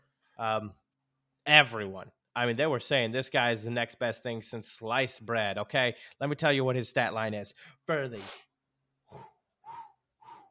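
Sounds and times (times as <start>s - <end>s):
speech: 0.4s - 0.8s, 1.5s - 8.5s, 9.1s - 9.3s
heavy breaths huffed into a microphone with a faint wheezy edge: 7.5s - 8.4s.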